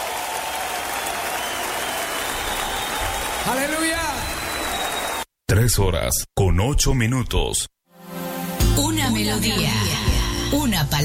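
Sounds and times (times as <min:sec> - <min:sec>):
large crowd applauding: 0:00.0 - 0:05.3
speech: 0:03.4 - 0:04.4, 0:05.6 - 0:07.7, 0:09.1 - 0:11.0.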